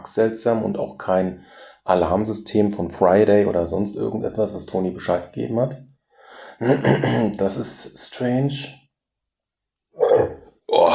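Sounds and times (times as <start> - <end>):
speech: 0.0 - 5.9, 6.6 - 8.8
laughter: 6.5 - 7.7
person with a stomach bug belching: 6.6 - 7.3, 10.0 - 10.9.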